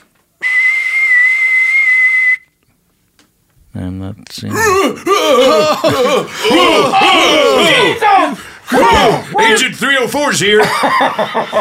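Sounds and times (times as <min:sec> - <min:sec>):
loud shrill whistle blast: 0:00.4 - 0:02.6
speech: 0:03.8 - 0:11.5
laughter: 0:04.5 - 0:09.6, 0:10.4 - 0:11.5.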